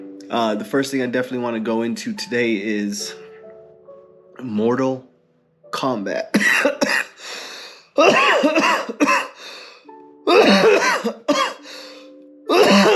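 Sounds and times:
speech: 0.3s - 3.2s, 4.4s - 5.1s, 5.7s - 7.0s, 8.0s - 9.2s, 10.4s - 11.4s
man coughing in harsh bursts: 6.3s - 7.2s, 8.0s - 9.4s, 10.3s - 11.7s, 12.5s - 12.9s
man clearing throat hoarsely: 6.4s - 7.2s, 8.0s - 9.4s, 10.3s - 11.6s, 12.5s - 12.9s
wheezy breathing: 7.2s - 8.0s, 9.3s - 9.9s, 11.6s - 12.2s.

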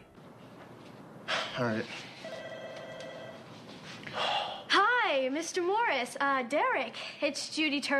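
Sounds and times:
speech: 1.6s - 2.1s, 5.1s - 7.9s
telephone ringing with electronic trill: 2.2s - 3.6s.

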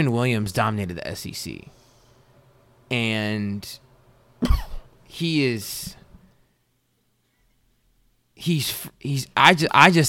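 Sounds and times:
speech: 0.0s - 1.8s, 2.9s - 3.8s, 4.4s - 6.0s, 8.4s - 10.0s
man sneezing: 4.4s - 4.9s.

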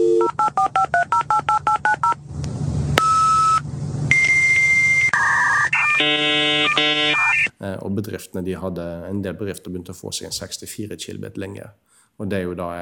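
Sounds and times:
dial-up modem dialing tones: 0.0s - 2.2s, 3.0s - 7.5s
speech: 7.9s - 12.8s.

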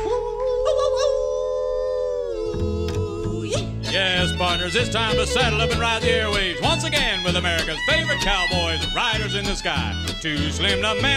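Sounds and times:
wolf-like howl in a cowboy song: 0.1s - 3.2s
speech: 4.5s - 11.1s.

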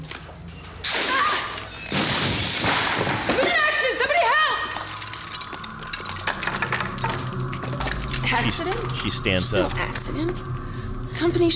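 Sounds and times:
glass case shattering from a woman falling from a ladder: 0.8s - 9.8s
speech: 8.5s - 10.5s, 11.2s - 11.5s.

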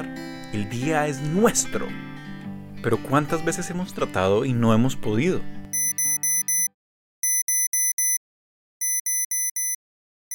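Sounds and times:
speech: 0.0s - 2.1s, 2.8s - 5.6s
alarm clock ringing with bright electronic beeps: 5.8s - 8.2s, 8.8s - 10.3s.

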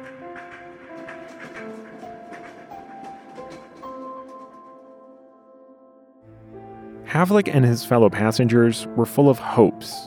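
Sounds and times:
passenger train wheels clicking over rail joints: 0.0s - 5.1s
speech: 7.2s - 10.0s.

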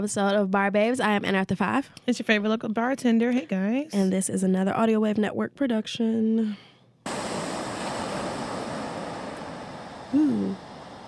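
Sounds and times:
speech: 0.0s - 6.7s, 10.1s - 10.6s
ocean surf: 7.1s - 11.0s.

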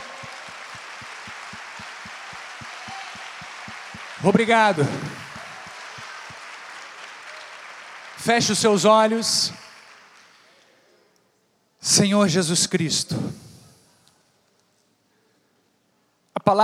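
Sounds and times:
large audience applauding: 0.0s - 10.6s
speech: 4.2s - 5.2s, 8.2s - 9.6s, 12.0s - 13.4s.

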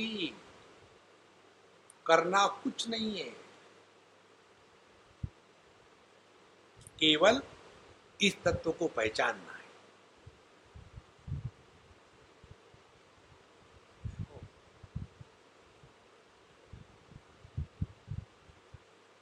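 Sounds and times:
air conditioner and fan whoosh: 0.0s - 19.2s
speech: 2.1s - 3.4s, 7.0s - 7.5s, 8.2s - 9.5s
soft low thumps: 10.2s - 11.7s, 14.0s - 15.3s, 16.7s - 18.8s.

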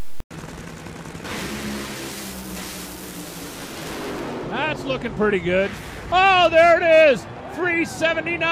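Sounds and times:
funny car engine roaring on a drag racing run: 0.0s - 6.6s
speech: 4.7s - 8.4s.

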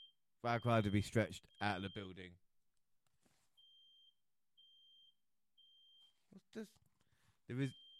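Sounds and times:
fire alarm high-pitched electronic tone: 0.0s - 2.2s, 3.6s - 6.1s, 7.6s - 7.9s
speech: 0.4s - 2.4s, 6.5s - 6.8s, 7.5s - 7.8s.

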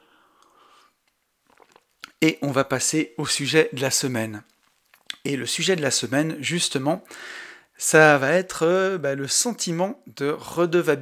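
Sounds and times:
person taking a small sip of water: 0.4s - 2.2s, 4.4s - 5.3s
swallowing clicks: 1.1s - 2.3s, 4.5s - 5.3s
speech: 2.2s - 4.6s, 5.2s - 11.0s.

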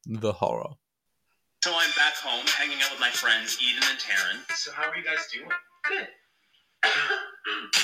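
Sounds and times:
speech: 0.0s - 0.8s, 1.6s - 6.2s, 6.8s - 7.8s
person coughing in harsh bursts: 6.8s - 7.8s.

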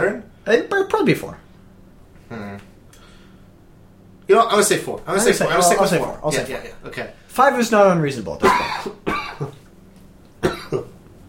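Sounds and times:
speech: 0.1s - 1.4s, 4.3s - 9.6s
person fake coughing: 8.4s - 9.6s, 10.4s - 10.9s.

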